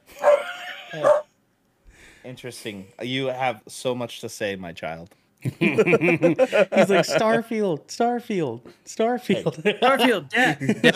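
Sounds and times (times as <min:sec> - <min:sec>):
dog barking: 0:00.2 - 0:01.3
speech: 0:00.9 - 0:01.2, 0:02.2 - 0:10.9
laughter: 0:05.4 - 0:07.4, 0:09.3 - 0:10.9.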